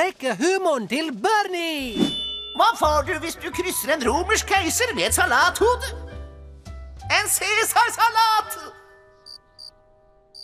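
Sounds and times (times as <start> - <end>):
speech: 0.1 - 6.2, 7.1 - 8.8
short high cricket chirps: 9.2 - 9.7.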